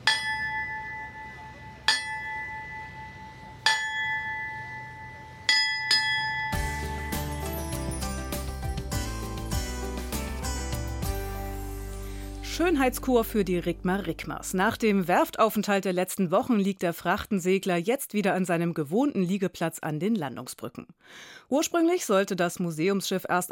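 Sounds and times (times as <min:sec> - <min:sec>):
ship's bell ringing: 0:00.0 - 0:08.6
music: 0:06.5 - 0:15.0
speech: 0:12.6 - 0:23.5.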